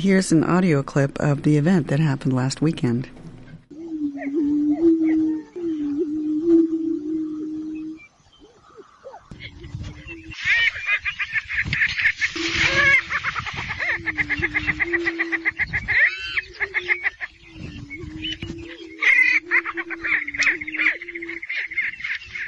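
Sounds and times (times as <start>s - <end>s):
speech: 0.0s - 3.2s
prairie chickens booming with low hollow moans in Iowa: 3.6s - 22.4s
prairie chickens cackling and whooping in Iowa: 7.7s - 22.4s.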